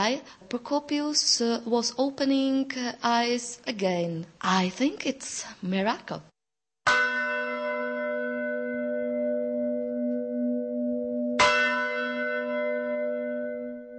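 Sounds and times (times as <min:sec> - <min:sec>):
speech: 0:00.0 - 0:06.3
large church bell tolling from Gothic bell tower: 0:06.9 - 0:13.9.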